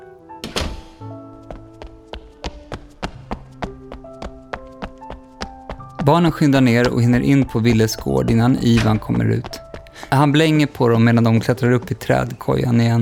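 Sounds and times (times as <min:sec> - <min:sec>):
door shutting with a heavy thud: 0:00.4 - 0:01.1, 0:08.6 - 0:09.4
lighter rhythmic taps and knocks with a faint tonal ring: 0:00.4 - 0:12.4
speech: 0:06.0 - 0:13.0.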